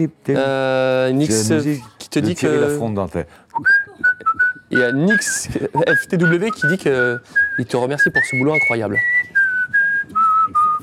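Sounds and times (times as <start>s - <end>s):
speech: 0.0s - 3.8s, 4.7s - 9.3s
person whistling a TV theme tune: 3.5s - 10.8s
laughter: 5.2s - 6.1s.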